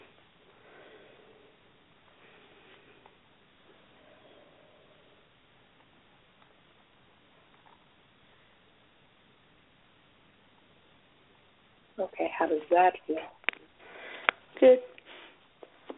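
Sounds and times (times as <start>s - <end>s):
slow deep breaths in and out: 0.0s - 5.3s, 13.8s - 15.5s
speech: 12.0s - 13.4s, 14.6s - 14.9s.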